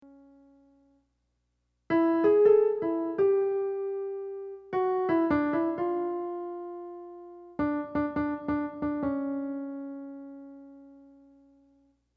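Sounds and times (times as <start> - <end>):
slower verse harmony on piano: 1.9 - 11.8.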